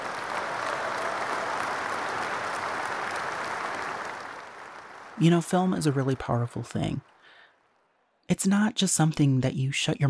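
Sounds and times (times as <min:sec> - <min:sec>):
crowd applause for VFX artists: 0:00.0 - 0:07.7
speech: 0:05.2 - 0:07.1, 0:08.3 - 0:10.0.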